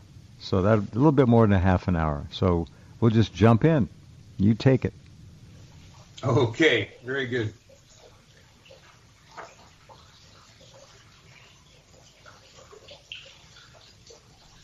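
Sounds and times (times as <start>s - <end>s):
speech: 0.4s - 5.0s, 6.2s - 7.6s
water fountain splashing and trickling: 5.8s - 14.6s.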